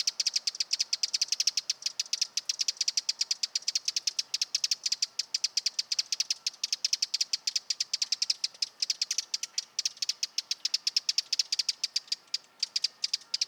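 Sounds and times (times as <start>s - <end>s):
Eurasian wren Troglodytes troglodytes troglodytes trilling: 0.0s - 13.4s.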